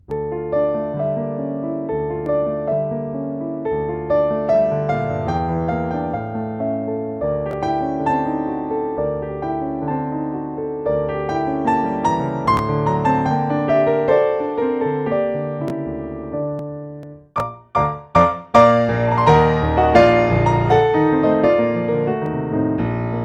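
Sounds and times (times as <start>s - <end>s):
Steinway D grand piano: 0.0s - 23.2s.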